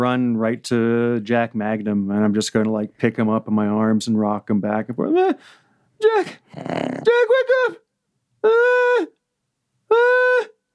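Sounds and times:
speech: 0.0 - 7.8, 8.4 - 9.2, 9.9 - 10.5
person imitating goat bleats: 6.1 - 7.6.

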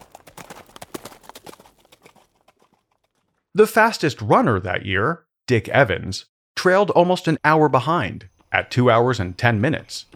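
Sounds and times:
horse hooves clip-clopping: 0.0 - 3.5
speech: 3.6 - 10.1.

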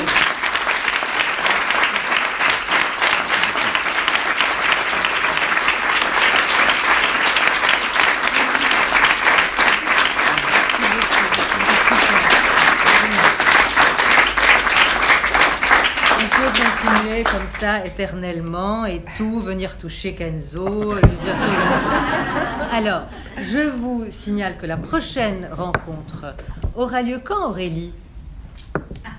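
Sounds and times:
audience applause giving an ovation at a live talk event: 0.0 - 17.4
laughter: 9.8 - 13.5, 20.9 - 23.4
speech: 17.6 - 28.0.

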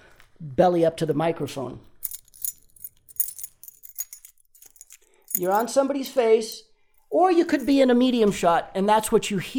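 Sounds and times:
speech: 0.5 - 1.9, 5.4 - 9.5
keys jingling: 1.9 - 5.8, 7.0 - 7.9.

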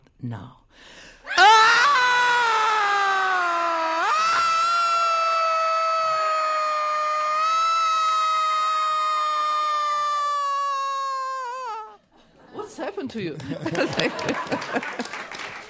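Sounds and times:
speech: 0.2 - 1.5, 13.0 - 15.2
several voices screaming together in a sustained wail: 1.3 - 12.0
laughter: 13.4 - 15.5.

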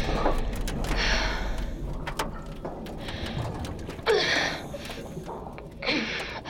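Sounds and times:
heavy ragged breathing while crawling: 0.0 - 6.4.

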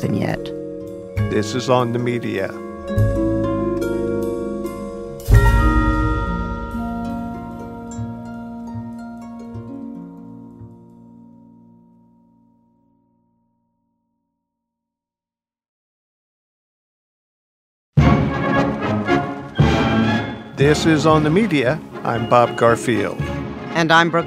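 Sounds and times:
speech: 0.0 - 0.6, 1.2 - 3.1, 20.7 - 24.2
march music with full sustained harmonic tones: 0.0 - 11.1, 18.0 - 24.2.

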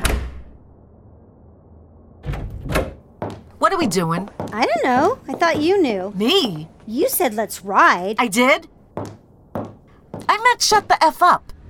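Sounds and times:
front door slamming shut: 0.0 - 0.6, 2.2 - 3.0
speech: 3.7 - 8.7, 10.6 - 11.6
soft rustling knocks: 4.2 - 7.1, 8.9 - 10.4.

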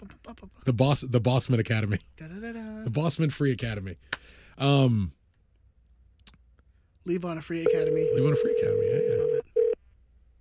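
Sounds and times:
speech: 0.3 - 5.2, 7.1 - 9.4
short steady electronic phone tones: 7.6 - 9.8.

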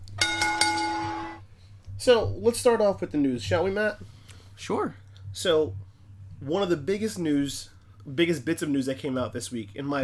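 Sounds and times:
wrestling ring bell clanging: 0.2 - 1.5
speech: 2.0 - 5.8, 6.4 - 10.0.

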